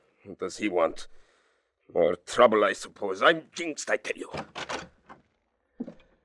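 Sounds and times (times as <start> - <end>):
speech: 0.2 - 1.3, 1.9 - 4.6
door opening: 4.2 - 6.1.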